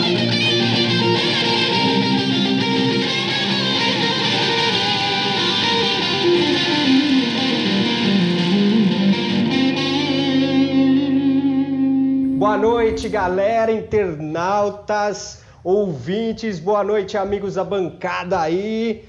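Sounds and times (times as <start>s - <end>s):
short loud rock jingle of heavily distorted effects-laden electric guitar: 0.0s - 14.6s
speech: 13.0s - 19.0s.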